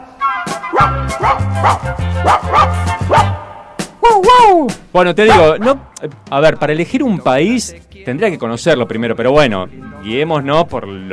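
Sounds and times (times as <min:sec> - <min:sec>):
small brown-haired dog barking furiously at passing people in a park: 0:00.7 - 0:03.4, 0:05.2 - 0:05.8
small brown-haired dog whining in a park: 0:00.7 - 0:03.4
speech: 0:00.8 - 0:03.3, 0:04.1 - 0:11.1
steady thumping low bass line: 0:00.8 - 0:07.6.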